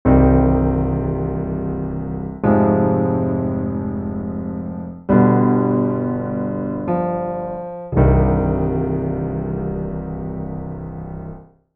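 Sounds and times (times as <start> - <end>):
grand piano with ivory keys: 0.0 - 11.7.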